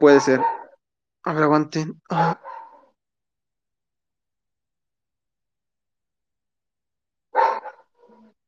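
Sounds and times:
speech: 0.0 - 0.6, 1.2 - 2.6
dogs fighting outside barking and snarling: 0.3 - 0.8, 2.4 - 3.0, 7.3 - 8.4.

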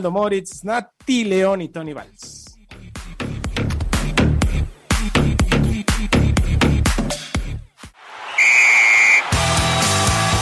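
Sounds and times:
speech: 0.0 - 2.4
punchy rhythmic music: 2.0 - 7.7
referee whistle blast: 8.3 - 9.4.

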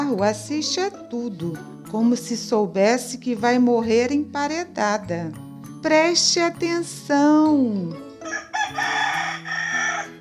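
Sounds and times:
speech: 0.1 - 9.0
rooster crowing: 8.2 - 10.2.

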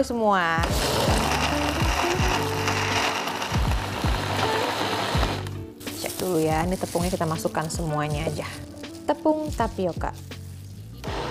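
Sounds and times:
speech: 0.0 - 2.3, 6.2 - 10.4
blender motor roaring: 0.6 - 5.6, 11.0 - 11.2
ice chunks rattling against blender jar: 0.6 - 6.2.

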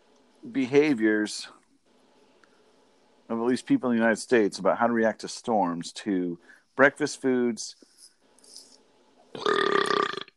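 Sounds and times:
speech: 0.4 - 1.6, 3.3 - 7.9
loud harsh human burp: 9.4 - 10.3.

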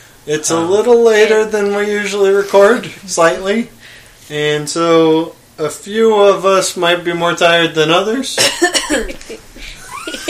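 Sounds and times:
speech: 0.2 - 10.2
person coughing: 8.4 - 9.2
laughter: 8.9 - 10.2.

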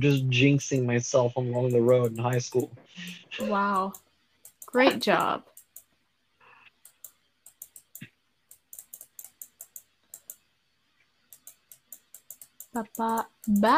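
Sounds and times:
speech: 0.0 - 4.0, 4.7 - 5.5, 12.8 - 13.7
faint hum: 0.0 - 13.7
computer mouse clicks during video gameplay: 1.6 - 6.0, 6.6 - 10.5, 11.1 - 13.7.

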